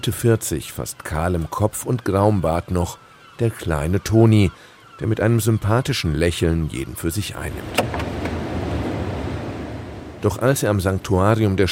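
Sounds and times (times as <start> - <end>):
speech: 0.0 - 8.1, 10.2 - 11.7
gusty wind: 7.3 - 11.2
wild Atlantic surf crashing on a shore at dawn: 7.4 - 10.8.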